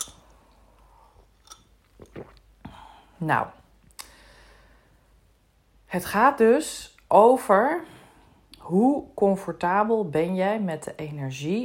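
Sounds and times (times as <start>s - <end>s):
person sipping a drink: 0.0s - 3.1s
gulps and swallows: 1.8s - 2.8s
speech: 3.2s - 3.6s, 5.9s - 7.9s, 8.7s - 11.6s.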